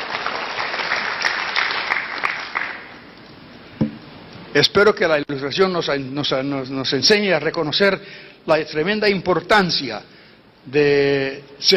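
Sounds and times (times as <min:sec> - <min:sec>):
crowd applauding: 0:00.0 - 0:03.0
speech: 0:04.6 - 0:11.7.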